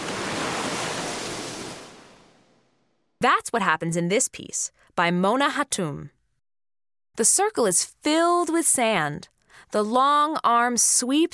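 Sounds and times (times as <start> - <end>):
ocean waves washing up a beach: 0.0 - 2.5
speech: 3.2 - 6.2, 7.2 - 11.3.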